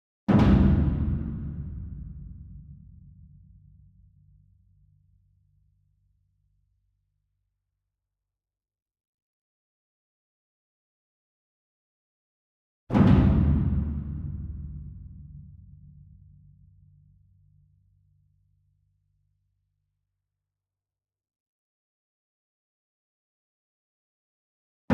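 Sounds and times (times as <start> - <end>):
distant taiko drum flam: 0.3 - 2.9, 12.9 - 15.4.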